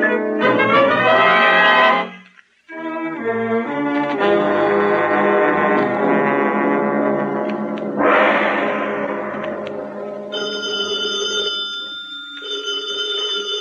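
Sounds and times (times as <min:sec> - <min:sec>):
dramatic music: 0:00.1 - 0:02.1, 0:03.2 - 0:10.3
telephone with electric bell ringing: 0:10.3 - 0:13.6.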